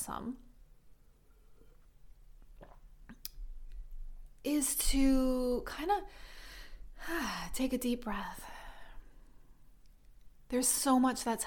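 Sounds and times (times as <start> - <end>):
speech: 0.0 - 0.5, 4.4 - 6.4, 7.0 - 8.6, 10.5 - 11.4
sipping and swallowing a drink of water: 1.2 - 4.0.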